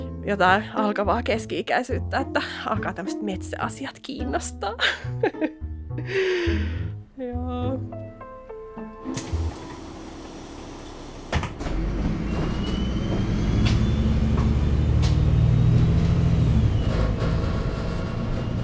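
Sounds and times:
speech: 0:00.2 - 0:08.0
engine rumble and road noise inside a moving bus: 0:09.2 - 0:18.6.

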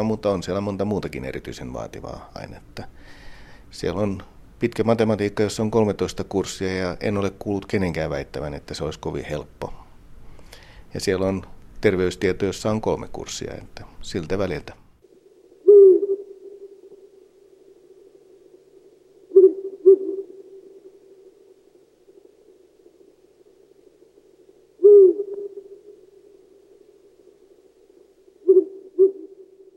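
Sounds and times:
speech: 0:00.0 - 0:09.8, 0:10.9 - 0:14.8
faint steady background: 0:00.0 - 0:29.7
Ural owl hooting: 0:15.4 - 0:29.7.

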